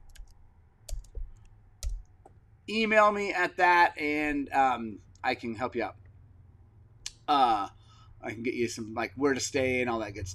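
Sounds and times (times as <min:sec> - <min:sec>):
typing on a computer keyboard: 0:00.0 - 0:02.1
speech: 0:02.7 - 0:06.0, 0:07.3 - 0:10.3.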